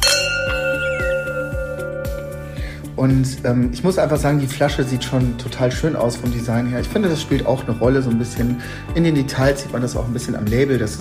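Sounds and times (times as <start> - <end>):
wine glasses clinking in a toast: 0.0 - 2.6
music with a soft steady rhythmic beat: 0.0 - 10.9
speech: 3.0 - 10.9.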